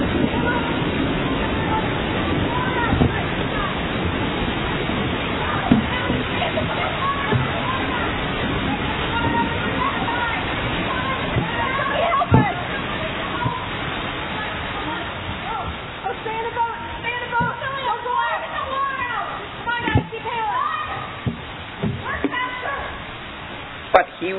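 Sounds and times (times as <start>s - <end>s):
rough water and breaking storm waves splashing: 0.0s - 24.3s
wind: 0.0s - 24.3s.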